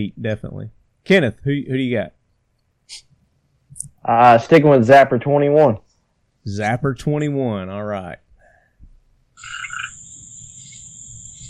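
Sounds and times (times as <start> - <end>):
speech: 0.0 - 2.2, 2.9 - 3.1, 3.7 - 5.8, 6.4 - 8.2
chorus of tree frogs trilling and croaking outdoors: 9.4 - 11.4.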